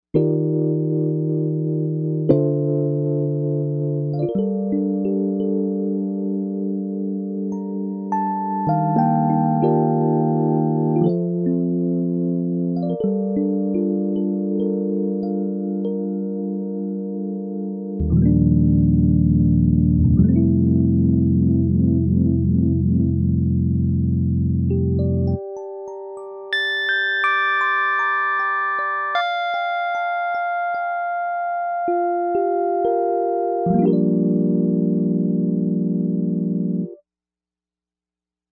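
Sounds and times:
Rhodes electric piano sound on Novation UltraNova synthesizer: 0.2s - 37.0s.

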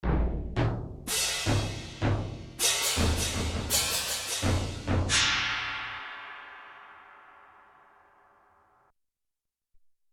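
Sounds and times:
bass drum: 0.0s - 5.9s
soft-attack cymbals: 1.1s - 8.6s.

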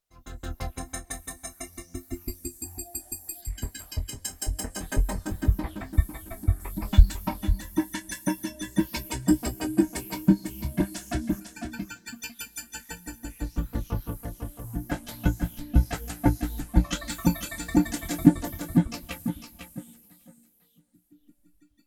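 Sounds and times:
sci-fi groove on a Roland JD-800 synthesizer with factory patches: 3.5s - 20.1s.

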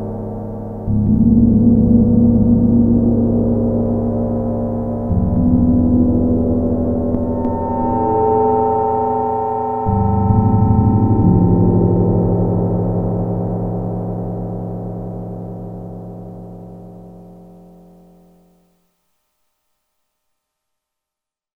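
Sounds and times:
Roland Jupiter-8 factory patch gong sound: 0.9s - 14.3s.

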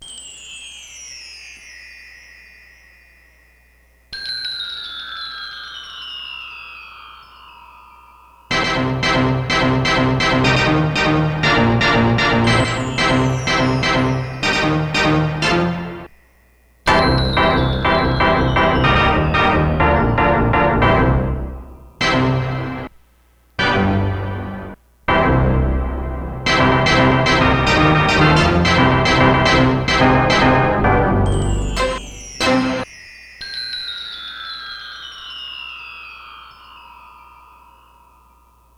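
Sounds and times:
pipe organ hit: 8.5s - 16.1s, 16.9s - 22.9s, 23.6s - 32.8s.

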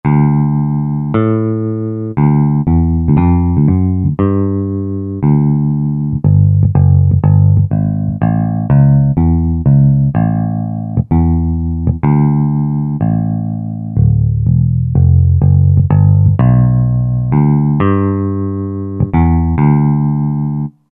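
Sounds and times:
six-string guitar country music: 0.0s - 20.7s.

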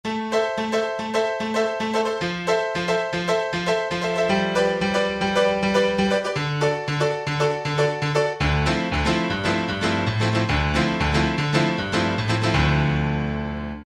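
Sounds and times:
Alesis QS8 House Piano factory preset: 0.0s - 13.8s.

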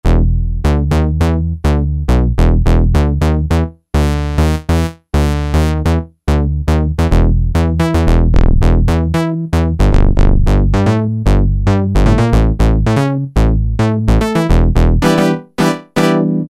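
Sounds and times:
synthesizer bass factory preset: 0.0s - 16.4s.

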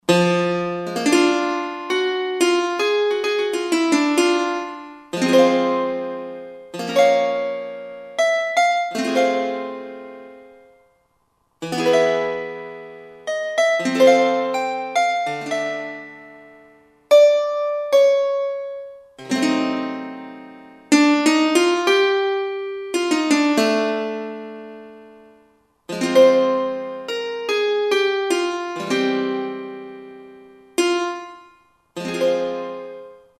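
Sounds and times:
Clarsah harp on Roland SR-JV80-16 Orchestral II: 0.1s - 10.8s, 11.6s - 33.3s.

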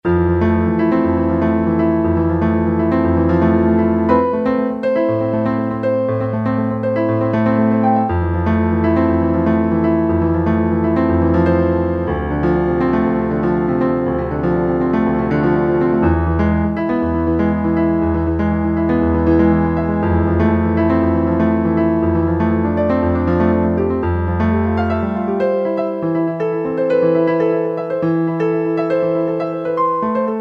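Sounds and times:
Yamaha YPT-400 piano arpeggio: 0.0s - 30.3s.

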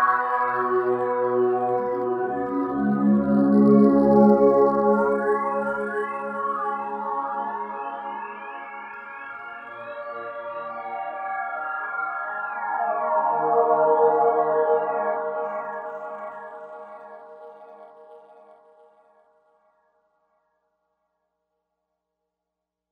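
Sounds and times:
resonant haunting Novation UltraNova synth sound: 0.2s - 18.5s.

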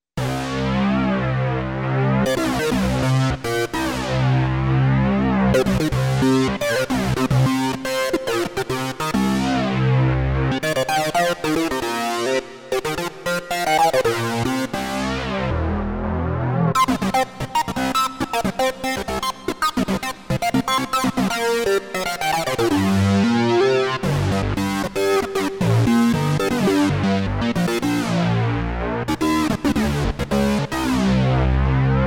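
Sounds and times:
synced Oberheim OB-8 synthesizer: 0.2s - 32.0s.

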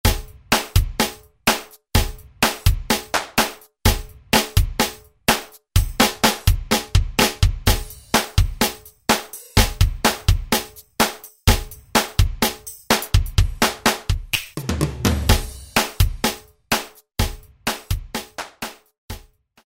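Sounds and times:
drum machine R&B preset pattern: 0.0s - 19.5s.

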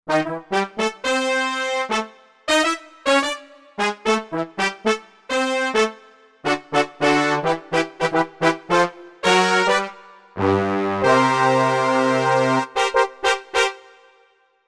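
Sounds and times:
brass instruments: 0.1s - 14.4s.

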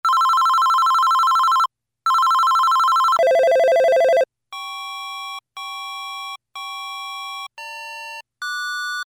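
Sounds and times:
telephone sound synthesized on a Korg MS2000: 0.1s - 4.2s.

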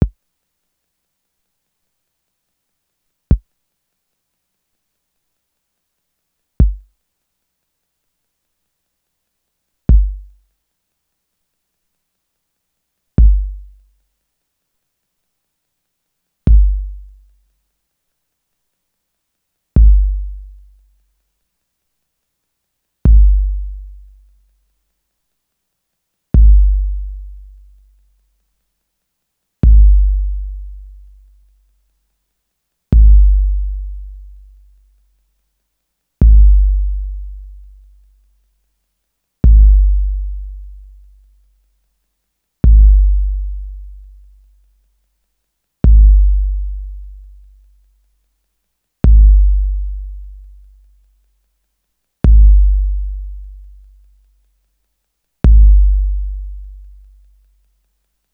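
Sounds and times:
drum machine bass drum sample: 6.6s - 6.9s, 9.9s - 10.4s, 13.2s - 13.7s, 16.5s - 17.1s, 19.8s - 20.5s, 23.1s - 23.9s, 26.4s - 27.3s, 29.6s - 30.9s, 32.9s - 34.3s, 36.2s - 37.6s, 39.4s - 40.8s, 42.6s - 44.0s, 45.8s - 47.2s, 49.0s - 50.4s, 52.2s - 53.6s, 55.4s - 56.9s.

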